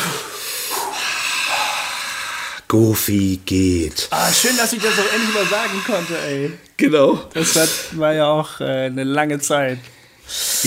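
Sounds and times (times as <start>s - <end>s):
long loud deep inhale and slow exhale: 0.0s - 2.7s, 4.2s - 6.6s, 9.9s - 10.6s
speech: 2.7s - 10.6s.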